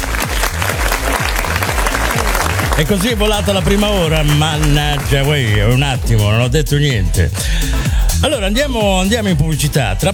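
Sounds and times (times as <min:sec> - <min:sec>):
audience applauding a DJ: 0:00.0 - 0:06.4
speech: 0:02.8 - 0:10.1.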